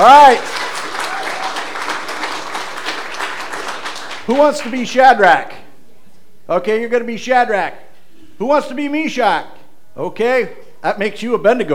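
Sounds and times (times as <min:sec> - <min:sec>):
speech: 0:00.0 - 0:00.7, 0:04.3 - 0:05.6, 0:06.5 - 0:07.8, 0:08.4 - 0:11.7
audience applauding: 0:00.0 - 0:04.9.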